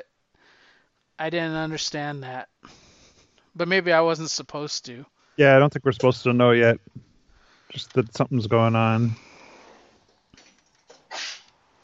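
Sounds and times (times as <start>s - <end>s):
speech: 1.2s - 2.8s, 3.6s - 7.1s, 7.7s - 9.3s
sneeze: 11.1s - 11.5s.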